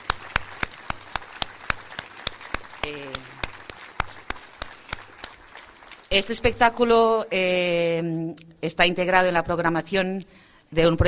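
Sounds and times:
audience applause after a live performance: 0:00.0 - 0:06.1
speech: 0:02.8 - 0:03.3, 0:06.2 - 0:11.0.

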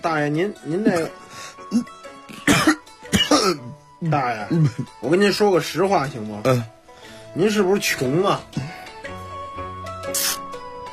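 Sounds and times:
speech: 0:00.0 - 0:02.0, 0:03.4 - 0:06.8, 0:07.4 - 0:08.8, 0:10.1 - 0:10.4
person coughing after choking on spicy filling in a steamed bun: 0:01.7 - 0:03.8.

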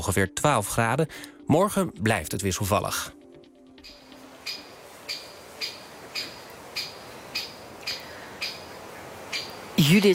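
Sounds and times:
speech: 0:00.0 - 0:03.2, 0:09.9 - 0:10.1
great spotted woodpecker calls: 0:03.8 - 0:10.1
faint hiss: 0:03.9 - 0:10.1.

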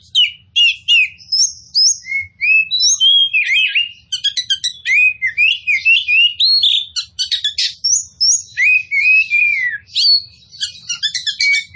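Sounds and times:
Oriental magpie-robin singing: 0:00.0 - 0:11.7.

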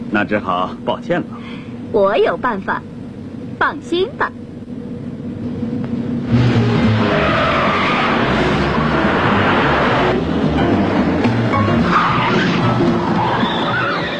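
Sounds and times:
speech: 0:00.1 - 0:02.9, 0:03.6 - 0:04.4
cars racing in a car chase: 0:05.4 - 0:14.1.

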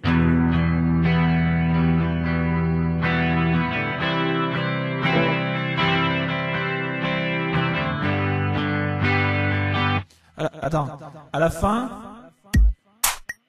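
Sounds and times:
guitar played through an amp simulation with delay and reverb: 0:00.0 - 0:10.1
speech: 0:10.7 - 0:12.0.

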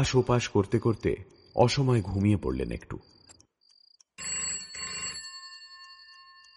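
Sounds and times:
speech: 0:00.0 - 0:03.2
landline telephone extension bell ringing in a house: 0:04.2 - 0:06.5.

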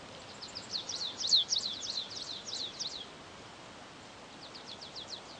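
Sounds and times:
Stripe-tailed yellow finch Sicalis citrina citrina singing: 0:00.2 - 0:03.1, 0:04.3 - 0:05.3.

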